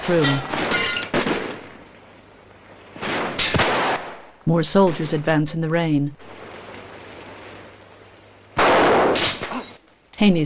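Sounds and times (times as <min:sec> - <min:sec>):
speech: 0:00.0 - 0:00.6, 0:04.5 - 0:06.4, 0:10.2 - 0:10.4
gunfire in a battle: 0:00.0 - 0:01.9, 0:02.9 - 0:05.4, 0:08.6 - 0:09.6.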